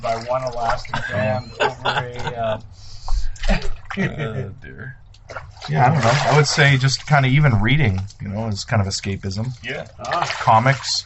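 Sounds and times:
water sloshing and splashing in a hot tub: 0:00.0 - 0:01.1, 0:03.2 - 0:04.3, 0:05.0 - 0:11.0
speech: 0:00.0 - 0:11.0
laughter: 0:00.6 - 0:04.6, 0:05.7 - 0:06.5.

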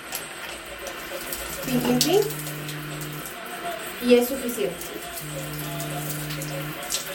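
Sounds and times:
shower water running while washing hair: 0:00.0 - 0:07.1
speech: 0:01.7 - 0:02.4, 0:04.0 - 0:07.1
low droning hum: 0:01.8 - 0:03.3, 0:05.2 - 0:06.8.

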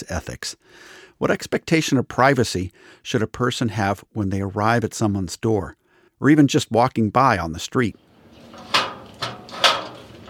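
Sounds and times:
speech: 0:00.0 - 0:08.1
gate clunking and rattling as it is opened: 0:08.1 - 0:10.2.

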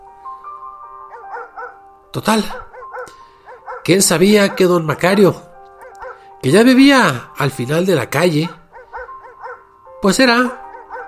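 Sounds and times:
dog barking: 0:01.1 - 0:01.8, 0:02.4 - 0:04.8, 0:05.8 - 0:06.3, 0:08.7 - 0:09.8, 0:10.5 - 0:11.0
speech: 0:02.2 - 0:02.7, 0:03.9 - 0:05.5, 0:06.4 - 0:08.6, 0:10.0 - 0:10.6.

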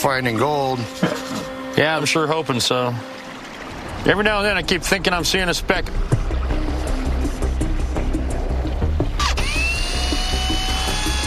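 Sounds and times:
speech: 0:00.0 - 0:03.2, 0:04.0 - 0:06.2
running water rushing: 0:00.0 - 0:11.2
power drill spinning a magnet: 0:09.2 - 0:11.2.

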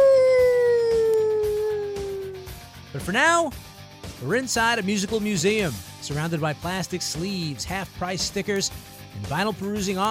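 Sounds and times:
long howl sliding downward in pitch: 0:00.0 - 0:02.6
speech: 0:03.0 - 0:10.0.

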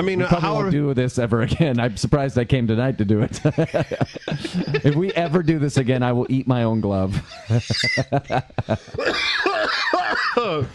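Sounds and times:
speech: 0:00.0 - 0:10.7
laughter: 0:03.1 - 0:10.7
person in a loud coughing fit: 0:09.0 - 0:10.7.

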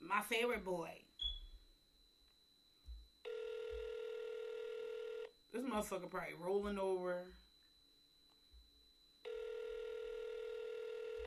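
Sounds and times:
speech: 0:00.1 - 0:01.1, 0:05.5 - 0:07.4
outgoing phone call ringing unanswered: 0:02.8 - 0:05.4, 0:07.4 - 0:11.2.

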